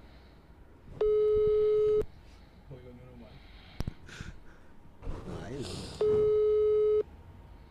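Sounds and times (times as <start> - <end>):
quiet breaths: 0.0 - 0.9, 2.0 - 4.9, 7.3 - 7.6
noise: 0.0 - 7.6
phone ringback tone on an unanswered call: 1.0 - 2.0, 6.0 - 7.1.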